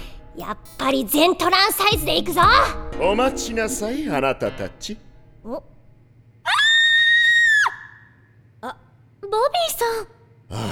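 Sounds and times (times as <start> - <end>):
speech: 0.4 - 5.7, 8.6 - 10.7
girl screaming in surprise in a shower room: 6.5 - 8.0.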